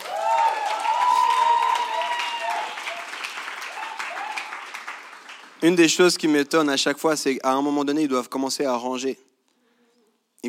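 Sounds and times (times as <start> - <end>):
people cheering: 0.0 - 5.4
audience applause: 0.0 - 6.0
speech: 5.6 - 9.3.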